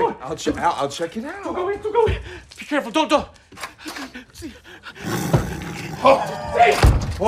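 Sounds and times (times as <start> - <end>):
speech: 0.2 - 3.7, 4.4 - 7.2
tiger growling, snarling and roaring in a bathroom: 4.9 - 6.4.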